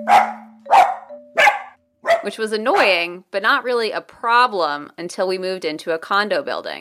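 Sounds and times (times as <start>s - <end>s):
dog barking: 0.0s - 2.9s
speech: 2.2s - 6.7s.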